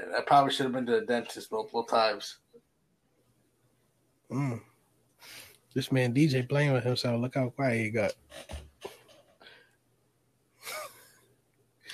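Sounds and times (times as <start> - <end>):
speech: 0.1 - 2.4, 4.3 - 8.6
heavy breathing: 5.2 - 5.6.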